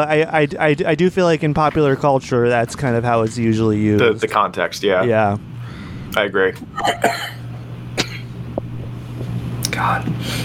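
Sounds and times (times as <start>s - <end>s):
speech: 0.0s - 7.4s, 9.8s - 10.4s
steady low hum: 0.5s - 10.4s
person coughing: 6.8s - 8.4s.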